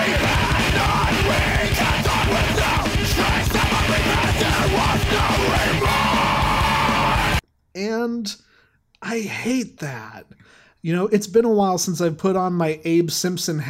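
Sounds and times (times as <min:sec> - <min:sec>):
dense loud distorted music: 0:00.0 - 0:07.4
pounding low drums: 0:00.0 - 0:07.4
person screaming into a microphone: 0:00.1 - 0:07.4
speech: 0:08.0 - 0:08.4, 0:09.0 - 0:13.6.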